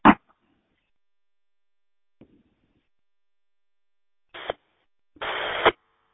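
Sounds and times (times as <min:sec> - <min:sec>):
radio transceiver tone bursts: 0:04.4 - 0:04.6, 0:05.2 - 0:05.8.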